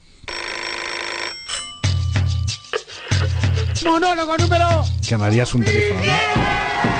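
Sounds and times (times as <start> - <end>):
alarm clock ringing with a metallic bell tone: 0.3 - 2.7
speech: 3.9 - 6.9.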